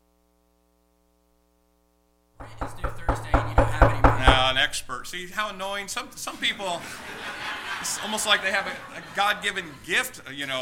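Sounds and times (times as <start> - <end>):
sharp knocks: 2.4 - 6.1
speech: 4.7 - 10.6
laughter: 6.0 - 10.6.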